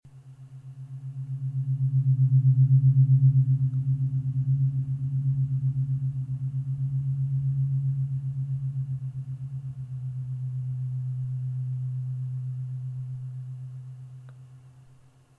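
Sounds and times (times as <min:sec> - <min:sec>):
Schumann wave tuning fork tone at 128 Hz: 0:00.1 - 0:15.3.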